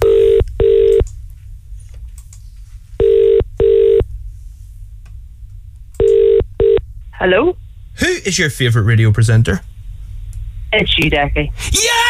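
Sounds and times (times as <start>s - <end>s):
outgoing telephone call ringing tone on the line: 0.0s - 1.0s, 3.0s - 4.0s, 6.0s - 6.8s
speech: 7.2s - 9.7s, 10.7s - 12.0s.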